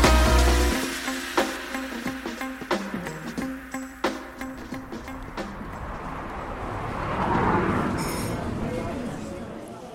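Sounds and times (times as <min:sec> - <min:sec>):
coffee machines steaming milk in a craft beer coffee shop: 0:00.1 - 0:04.4
murmur of chatter in a coffee shop: 0:07.6 - 0:09.9.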